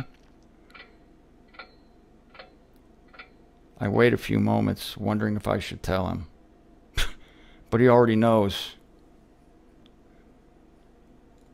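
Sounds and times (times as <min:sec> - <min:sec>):
low hum: 0:00.0 - 0:11.5
clock ticking: 0:00.8 - 0:03.4
speech: 0:03.8 - 0:06.3, 0:07.7 - 0:08.8.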